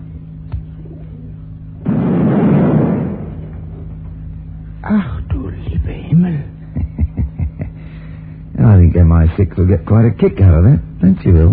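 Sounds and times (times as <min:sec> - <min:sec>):
low steady hum: 0:00.0 - 0:11.5
bomb explosion set off by a radio transmitter: 0:01.8 - 0:04.0
laughter: 0:06.6 - 0:08.0
speech: 0:09.2 - 0:11.5.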